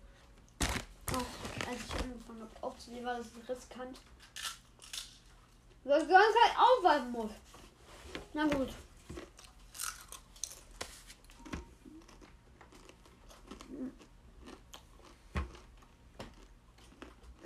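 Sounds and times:
potato chips crunching under chewing: 0:00.6 - 0:01.9, 0:04.2 - 0:05.5, 0:09.2 - 0:17.4
speech: 0:02.4 - 0:04.3, 0:05.8 - 0:07.5, 0:08.4 - 0:08.8.

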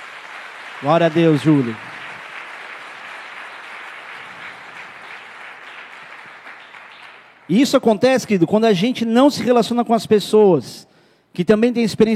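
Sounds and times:
audience clapping: 0:00.0 - 0:08.0
speech: 0:00.8 - 0:01.9, 0:07.5 - 0:12.1.

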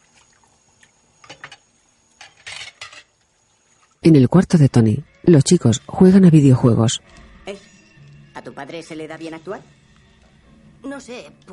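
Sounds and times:
plates knocking together while dishes are washed in a kitchen: 0:01.2 - 0:03.1
speech: 0:04.0 - 0:07.6, 0:08.5 - 0:09.8, 0:10.8 - 0:11.5.

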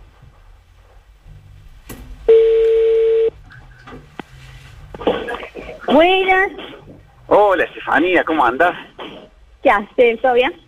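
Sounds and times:
noise: 0:00.0 - 0:10.6
telephone ringback tone: 0:02.3 - 0:03.3
speech: 0:05.9 - 0:06.7, 0:07.3 - 0:08.9, 0:09.6 - 0:10.6.

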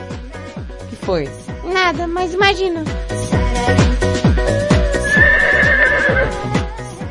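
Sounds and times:
speech: 0:01.0 - 0:04.7
horse neighing: 0:05.0 - 0:06.6.

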